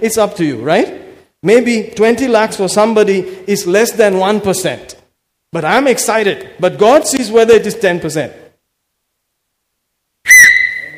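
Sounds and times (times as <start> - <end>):
speech: 0.0 - 8.4
shrill whistle blast: 10.2 - 10.9.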